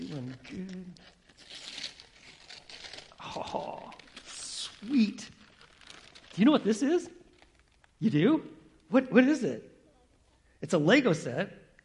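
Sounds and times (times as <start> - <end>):
wrapping paper crumpling as a gift is unwrapped: 0.0 - 8.0
speech: 0.1 - 1.2, 6.4 - 7.2, 8.0 - 9.7, 10.6 - 11.8.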